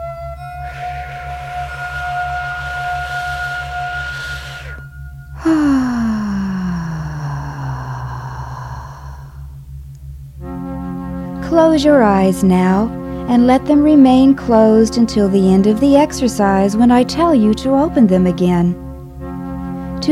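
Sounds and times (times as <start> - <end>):
soft droning tone: 0.0 - 20.0
steady low pulsing beat: 0.0 - 20.0
slow deep even breathing: 0.7 - 9.9
speech: 11.6 - 18.8.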